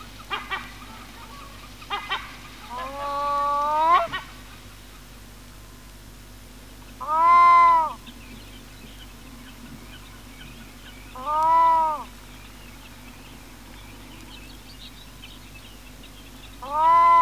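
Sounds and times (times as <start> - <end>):
black-throated loon calls: 0.3 - 4.3, 7.0 - 8.0, 11.2 - 12.1, 16.6 - 17.2.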